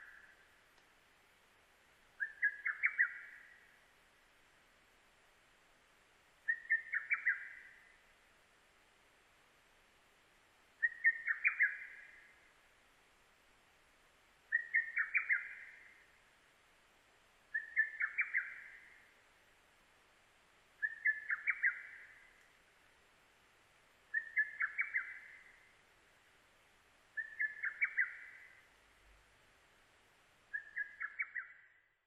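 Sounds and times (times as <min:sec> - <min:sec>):
lesser cuckoo calling: 0:02.2 - 0:03.7, 0:06.5 - 0:07.9, 0:10.8 - 0:12.3, 0:14.5 - 0:16.0, 0:17.5 - 0:19.0, 0:20.8 - 0:22.4, 0:24.1 - 0:25.7, 0:27.1 - 0:28.6, 0:30.5 - 0:31.6.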